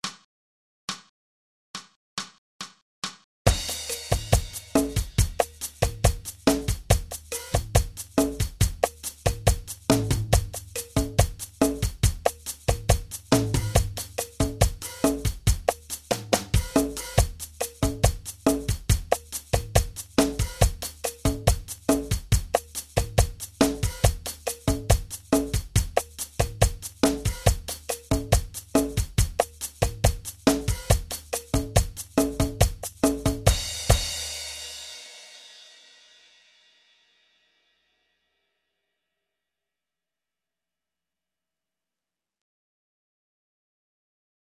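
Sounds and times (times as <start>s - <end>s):
drum track: 1.8s - 36.2s.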